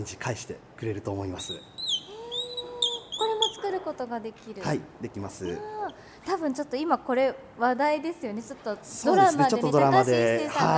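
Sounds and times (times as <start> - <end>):
speech: 0.0 - 1.8, 3.7 - 10.7
bird call device mimicking birdsong: 1.4 - 3.8.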